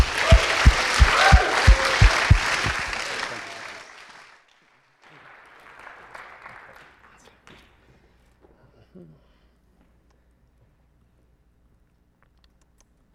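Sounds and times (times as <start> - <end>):
steady low thumps: 0.0 - 3.0
large audience clapping: 0.0 - 7.4.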